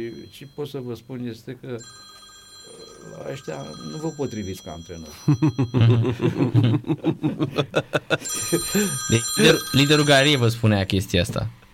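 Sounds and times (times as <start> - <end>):
mobile phone ringing: 0.0 - 0.8, 1.8 - 6.3, 8.2 - 10.7
speech: 0.0 - 11.6
people laughing: 5.2 - 9.8.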